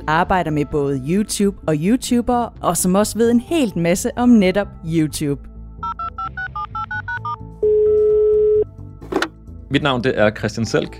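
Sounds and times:
speech: 0.0 - 5.5, 9.7 - 10.9
steady telephone call tone: 5.8 - 8.7.

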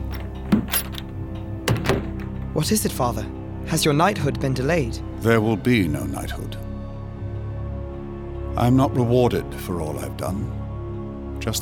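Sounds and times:
door swinging and shutting with solid thunks: 0.0 - 2.4
speech: 2.6 - 6.6, 8.6 - 10.6.

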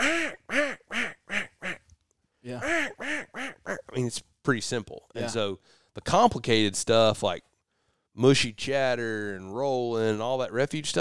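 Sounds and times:
duck quacking in a descending series: 0.0 - 1.8, 2.6 - 4.0
speech: 2.5 - 3.3, 4.0 - 7.5, 8.2 - 10.9.

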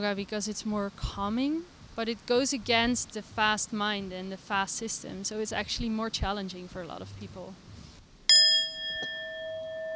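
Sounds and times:
speech: 0.0 - 7.6
brownie bell ringing for a brownie order: 8.3 - 9.9.

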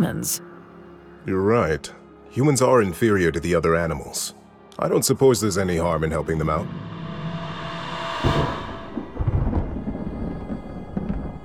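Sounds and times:
speech: 0.0 - 0.5, 1.2 - 7.0
thunder crack and rolling rumbles: 6.4 - 11.4.

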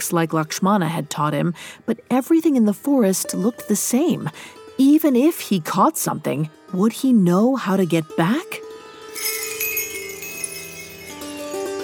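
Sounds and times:
speech: 0.0 - 8.6
bells ringing: 9.1 - 11.8.

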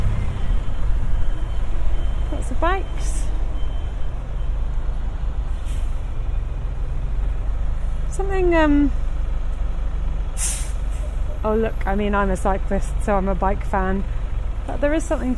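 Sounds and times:
bus engine rumbling: 0.0 - 15.3
speech: 2.6 - 3.3, 8.2 - 9.0, 11.4 - 15.3
bus air hisses: 5.6 - 6.0, 10.4 - 11.2.

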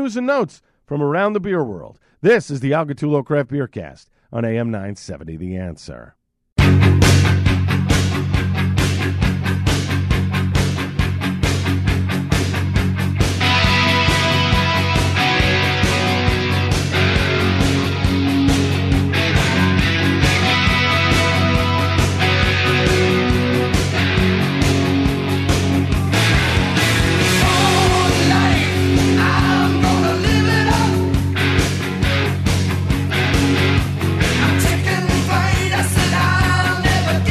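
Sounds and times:
speech: 0.0 - 6.8
heavy metal song from a 1982 album: 6.6 - 37.2.

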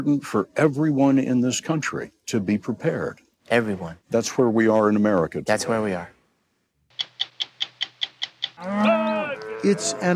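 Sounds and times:
speech: 0.0 - 6.2, 8.6 - 9.0, 9.6 - 10.1
sharp clicking beats: 6.9 - 8.6
cow mooing during a spring cattle drive in Wyoming: 8.6 - 10.1.

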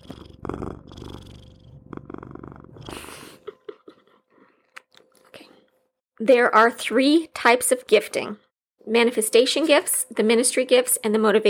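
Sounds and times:
cat purring: 0.0 - 3.9
speech: 6.2 - 11.4.

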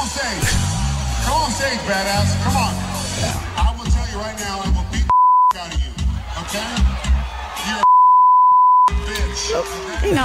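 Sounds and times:
noisy crowd-like sound: 0.0 - 7.9, 8.8 - 10.2
speech: 1.5 - 3.4, 4.2 - 7.9, 9.1 - 10.2
loud single-pitch censor bleep: 5.1 - 5.6, 7.8 - 8.9.

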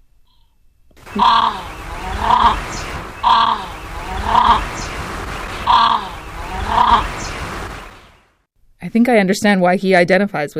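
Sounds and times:
Australasian crested grebe pūteketeke calling: 1.0 - 8.0
steady rushing background: 1.0 - 8.4
speech: 1.2 - 1.7, 2.3 - 3.7, 8.8 - 10.5.

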